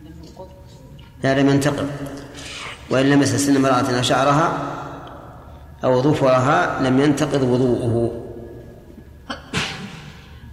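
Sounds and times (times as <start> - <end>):
speech: 0.4 - 4.8, 5.8 - 8.2
single sharp sneeze: 9.5 - 10.4.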